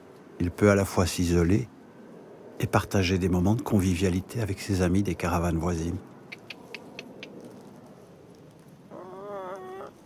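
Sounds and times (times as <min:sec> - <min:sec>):
speech: 0:00.4 - 0:01.8, 0:02.6 - 0:06.1
hen clucking at a caravan: 0:06.3 - 0:07.4
faint quick ticks: 0:06.3 - 0:07.5.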